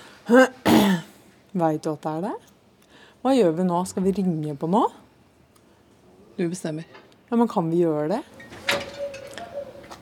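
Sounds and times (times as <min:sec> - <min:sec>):
faint hiss: 0:00.0 - 0:10.0
speech: 0:00.3 - 0:00.8, 0:01.5 - 0:02.5, 0:03.2 - 0:05.0, 0:06.4 - 0:08.5
door creaking as it swings: 0:08.4 - 0:10.0.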